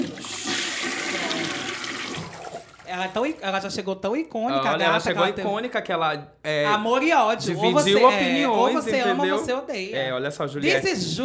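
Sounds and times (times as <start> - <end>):
toilet flushing: 0.0 - 3.5
speech: 2.9 - 11.2.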